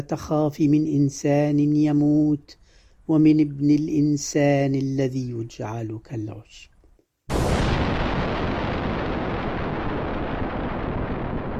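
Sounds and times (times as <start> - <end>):
speech: 0.0 - 6.7
bomb exploding nearby: 7.3 - 11.5
dense roaring rumble after a bomb blast: 7.3 - 11.5.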